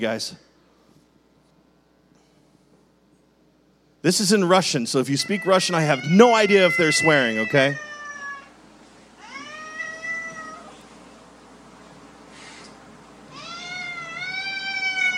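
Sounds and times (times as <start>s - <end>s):
speech: 0.0s - 0.5s, 4.0s - 7.9s
steady low hum: 0.0s - 15.1s
angry cat yowling in a played video: 5.2s - 8.6s, 9.2s - 10.8s, 13.3s - 15.1s.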